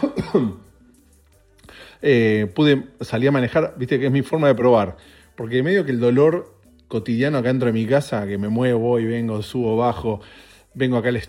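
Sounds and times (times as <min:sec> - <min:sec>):
speech: 0:00.0 - 0:00.6, 0:02.0 - 0:11.2
person with lower back trouble coughing: 0:00.0 - 0:00.7.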